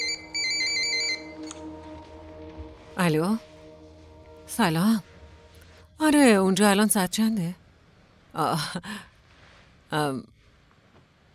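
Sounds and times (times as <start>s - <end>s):
mobile phone electronic ringtone for an incoming call: 0.0s - 1.7s
low steady hum: 0.0s - 10.5s
speech: 3.0s - 3.5s, 4.5s - 5.1s, 6.0s - 7.6s, 8.4s - 9.1s, 9.9s - 10.3s.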